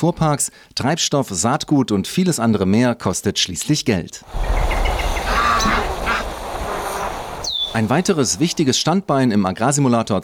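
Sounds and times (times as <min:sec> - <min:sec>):
speech: 0:00.0 - 0:05.8, 0:07.7 - 0:10.2
geese honking: 0:04.3 - 0:08.6.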